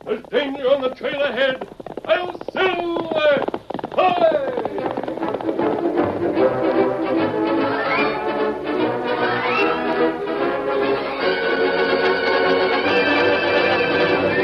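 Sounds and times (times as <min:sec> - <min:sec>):
hoofbeats of a galloping horse: 0:00.0 - 0:14.4
speech: 0:00.5 - 0:02.2
dramatic orchestral passage: 0:05.5 - 0:14.4.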